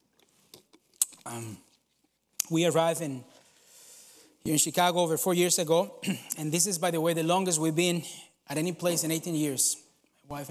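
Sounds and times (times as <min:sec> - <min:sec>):
person sipping water: 0:00.0 - 0:02.5
speech: 0:01.3 - 0:01.7, 0:02.5 - 0:03.3, 0:04.4 - 0:10.4.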